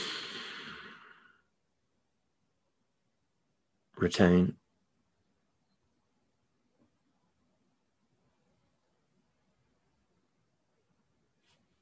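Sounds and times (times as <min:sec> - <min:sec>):
deep slow breath inhaled during a guided breathing exercise: 0:00.0 - 0:01.4
speech: 0:04.0 - 0:04.6.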